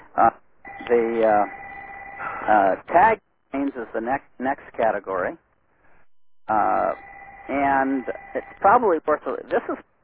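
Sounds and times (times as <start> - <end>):
speech: 0.2 - 1.6, 2.4 - 5.4, 6.5 - 10.0
unanswered ringing tone with bright overtones: 0.6 - 2.5, 6.5 - 8.6.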